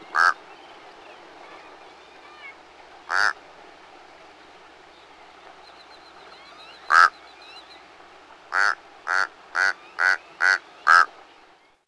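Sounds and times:
Mexican crow giving harsh croaking calls: 0.1s - 0.4s, 3.1s - 3.4s, 6.8s - 7.2s, 8.5s - 11.1s.

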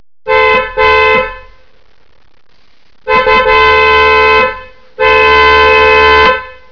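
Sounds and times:
car horn: 0.2s - 1.7s, 3.1s - 6.7s.

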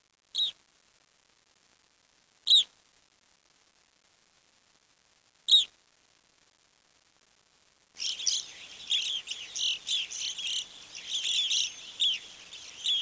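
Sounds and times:
single sharp bird chirp: 8.0s - 12.9s.

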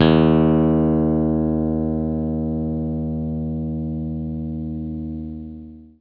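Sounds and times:
low E flat guitar tuner tone: 0.0s - 5.9s.

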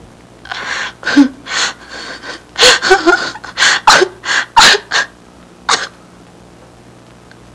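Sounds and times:
people crying: 1.1s - 5.1s.

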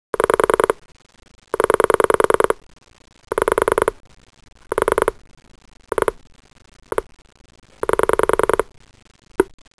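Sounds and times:
telephone pulse dialing: 0.2s - 0.8s, 1.6s - 2.6s, 3.3s - 4.0s, 4.7s - 5.2s, 5.9s - 6.2s, 7.8s - 8.7s.

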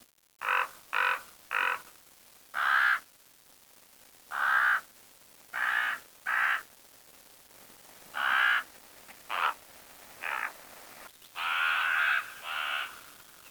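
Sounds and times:
bird cawing harshly: 0.4s - 1.9s, 2.6s - 3.0s, 4.3s - 4.9s, 5.6s - 6.7s, 8.2s - 8.7s, 9.3s - 9.6s, 10.2s - 10.6s, 11.4s - 13.4s.

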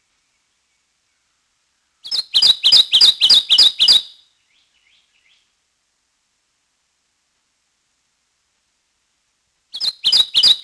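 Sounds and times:
Kentucky warbler chanting song of ringing two-syllable whistles: 2.0s - 4.3s, 9.7s - 10.6s.

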